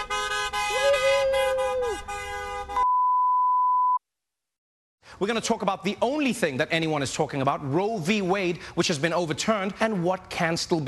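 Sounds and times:
car horn blaring: 0:00.0 - 0:03.0
clean sustained electronic beep: 0:02.8 - 0:04.0
speech: 0:05.2 - 0:10.8.

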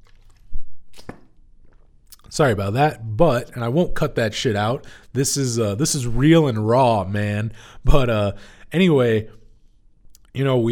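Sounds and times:
person swallowing water from a cup: 0:00.0 - 0:02.3
speech: 0:02.4 - 0:09.4, 0:10.3 - 0:10.7.

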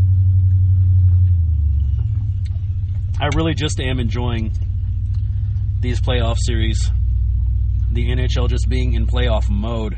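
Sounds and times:
truck engine idling: 0:00.0 - 0:09.9
speech: 0:03.2 - 0:04.8, 0:05.8 - 0:07.0, 0:07.9 - 0:09.9.

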